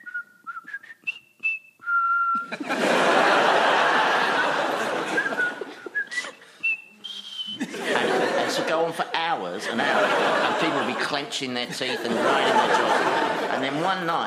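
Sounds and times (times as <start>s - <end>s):
voice imitating a pub parrot in Brixton whistling a jaunty march tune: 0.0s - 2.6s, 5.0s - 7.7s
loud laughter: 2.4s - 5.9s, 7.6s - 8.9s, 9.6s - 13.7s
speech: 2.5s - 2.9s, 11.1s - 14.2s.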